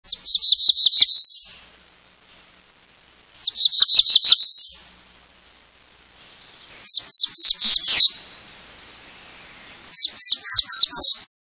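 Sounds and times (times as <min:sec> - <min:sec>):
black-throated blue warbler singing: 0:00.1 - 0:01.6, 0:03.4 - 0:04.9, 0:06.2 - 0:08.5, 0:09.6 - 0:11.3.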